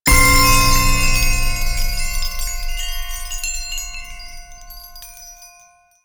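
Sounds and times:
chime hit: 0:00.1 - 0:05.9.

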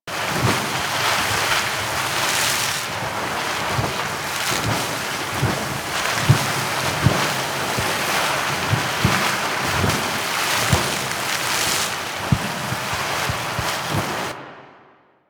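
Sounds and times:
water splashing from an aqua board: 0:00.1 - 0:14.4.

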